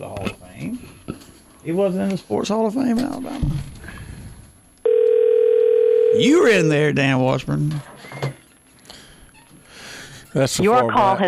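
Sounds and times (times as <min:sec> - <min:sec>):
speech: 0:01.6 - 0:03.7, 0:06.2 - 0:07.9, 0:10.4 - 0:11.2
steady telephone dialing tone as a call is placed: 0:04.8 - 0:06.2.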